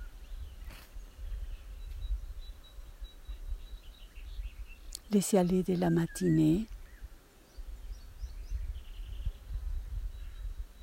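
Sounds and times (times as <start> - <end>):
birds chirping: 0.0 - 10.8
speech: 5.1 - 6.8.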